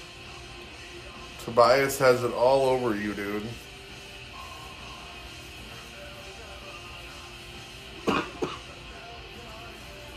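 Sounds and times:
speech: 0:01.5 - 0:03.7
person coughing: 0:08.0 - 0:08.8.

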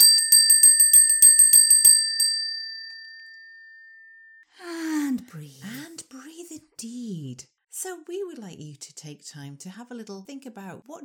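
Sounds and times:
small feng shui bell chiming: 0:00.0 - 0:04.4
speech: 0:05.3 - 0:05.8, 0:06.6 - 0:11.0.

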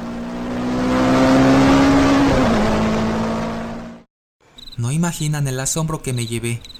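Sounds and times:
car passing by at high speed: 0:00.0 - 0:04.0
speech: 0:05.0 - 0:06.7.

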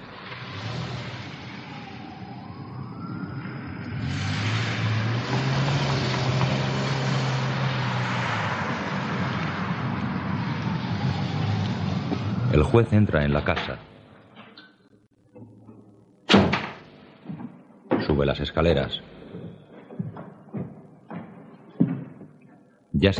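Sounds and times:
car engine revving while reversing and pulling away: 0:00.0 - 0:12.9
speech: 0:12.7 - 0:13.9, 0:18.2 - 0:19.2, 0:23.0 - 0:23.1.

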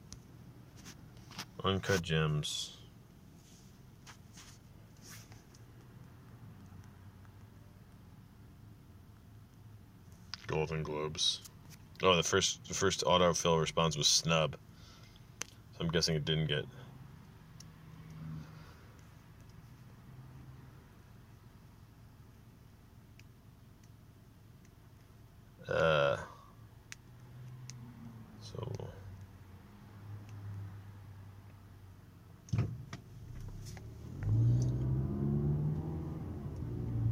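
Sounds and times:
speech: 0:01.6 - 0:02.8, 0:10.6 - 0:14.6, 0:15.8 - 0:16.8
pickup truck engine rumbling and revving while driving: 0:16.6 - 0:21.0, 0:25.8 - 0:31.5, 0:32.4 - 0:37.0.

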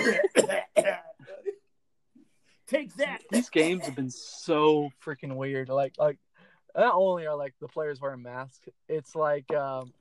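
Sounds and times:
deliberate forced coughing: 0:00.0 - 0:01.7
speech: 0:02.7 - 0:09.9.

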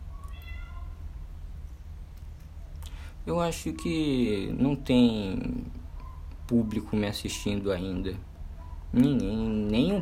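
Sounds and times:
cat meowing: 0:00.1 - 0:01.0
speech: 0:03.2 - 0:05.8, 0:06.5 - 0:08.3, 0:08.9 - 0:10.0.

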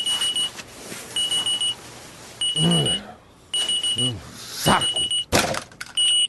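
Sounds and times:
alarm clock beeping with high-pitched electronic pulses: 0:00.0 - 0:00.5, 0:01.2 - 0:01.8, 0:02.4 - 0:04.1, 0:04.7 - 0:05.3, 0:06.0 - 0:06.2
speech: 0:02.6 - 0:03.1, 0:04.0 - 0:05.2.

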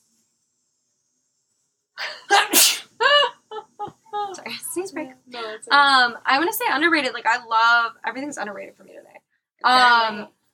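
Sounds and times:
person sneezing: 0:02.0 - 0:03.0
speech: 0:05.6 - 0:10.4.

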